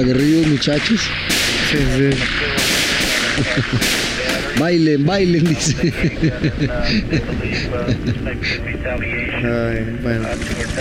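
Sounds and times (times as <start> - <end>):
speech: 0.0 - 2.8, 3.4 - 10.7
gunshots fired at the feet: 0.0 - 5.7
laughter: 3.0 - 8.8.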